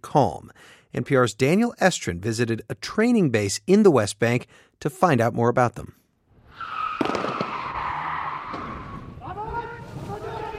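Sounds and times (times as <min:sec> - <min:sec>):
speech: 0:00.0 - 0:06.0
car tires screeching as vehicles skid to a stop in an arrest drill: 0:06.5 - 0:10.5
raised shouting voices of security forces in an arrest drill: 0:07.8 - 0:10.5.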